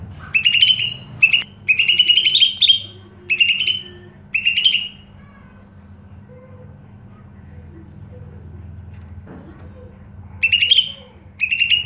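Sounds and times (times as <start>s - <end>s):
faint low hum: 0.0s - 11.8s
Greater green leafbird singing: 0.2s - 5.2s, 10.4s - 11.8s.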